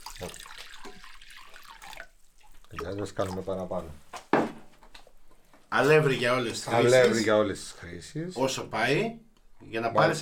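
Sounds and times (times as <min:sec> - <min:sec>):
lukewarm water running from a tap: 0:00.0 - 0:03.9
speech: 0:00.2 - 0:00.4, 0:02.7 - 0:04.1, 0:05.7 - 0:10.2.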